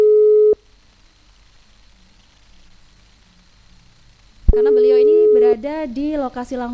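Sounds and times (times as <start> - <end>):
telephone line tone while connecting a call to a listener: 0.0 - 0.6, 4.5 - 5.6
speech: 5.6 - 6.7.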